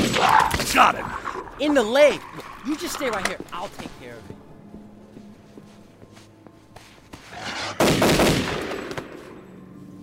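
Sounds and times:
speech: 0.8s - 4.3s
rifle shot: 7.8s - 9.0s.

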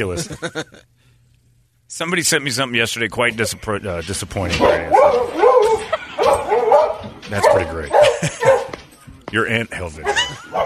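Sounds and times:
laughter: 0.0s - 0.9s, 5.6s - 6.7s, 7.8s - 8.8s, 10.0s - 10.6s
speech: 0.0s - 0.9s, 1.9s - 5.3s, 7.3s - 8.4s, 9.3s - 10.6s
dog barking: 4.5s - 8.8s, 10.0s - 10.6s.

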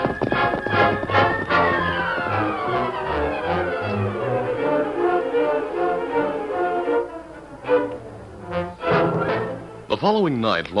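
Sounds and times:
two ridden horses galloping: 0.0s - 4.4s
loud orchestral music: 0.0s - 10.3s
speech: 10.0s - 10.7s.

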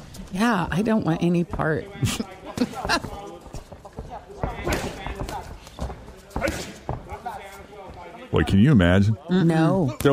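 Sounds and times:
speech: 0.3s - 3.3s, 8.3s - 10.1s
voices murmuring: 0.4s - 10.1s
punches landing on boxers' bodies: 2.4s - 7.3s.

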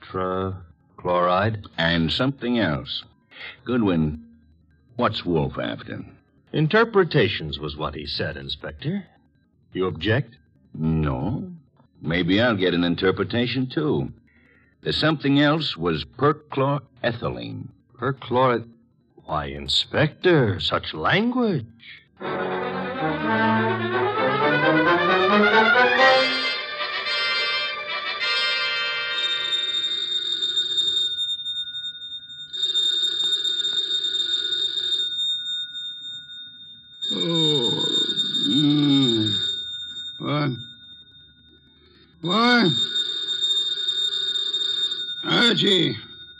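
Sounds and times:
speech: 0.1s - 4.2s, 5.0s - 9.1s, 9.7s - 14.2s, 14.8s - 22.6s
old-fashioned telephone bell ringing: 22.2s - 46.3s
low groaning vocal sounds: 37.1s - 39.4s.

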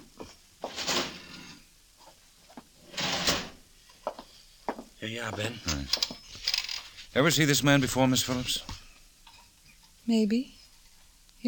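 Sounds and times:
left-hand desk drawer shutting with a longer scrape: 2.9s - 3.6s
speech: 5.0s - 6.2s, 7.1s - 8.8s, 10.1s - 10.6s.

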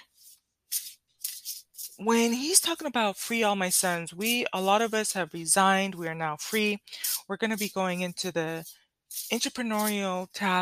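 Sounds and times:
deck of cards being shuffled: 0.2s - 2.0s, 9.1s - 9.9s
speech: 2.0s - 10.6s.

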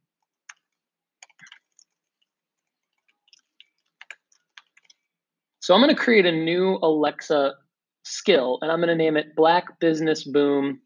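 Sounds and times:
computer mouse clicking an on-screen button: 0.2s - 5.1s
speech: 5.6s - 10.8s.

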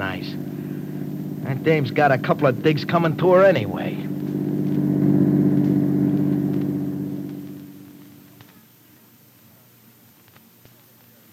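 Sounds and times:
car engine droning as car drives past: 0.0s - 8.5s
speech: 1.5s - 4.0s.

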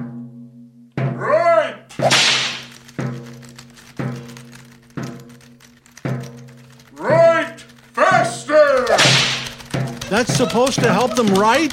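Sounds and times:
whip cracking in a writers' room: 1.9s - 3.9s, 8.7s - 11.7s
laughter: 7.0s - 11.7s
speech: 10.2s - 11.7s.

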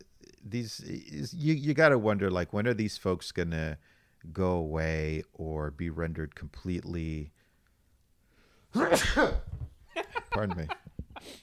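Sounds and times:
speech: 0.5s - 7.4s, 8.7s - 9.7s, 10.3s - 11.4s
person sneezing: 8.7s - 9.5s
laughter: 10.0s - 11.4s.

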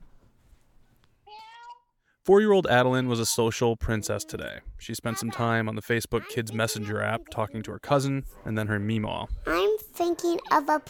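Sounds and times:
child imitating a cat meowing: 1.3s - 1.9s
speech: 2.3s - 10.8s.

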